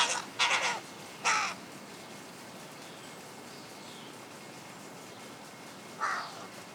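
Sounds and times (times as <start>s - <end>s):
Carrion crow Corvus corone cawing: 0.0s - 1.6s, 6.0s - 6.6s.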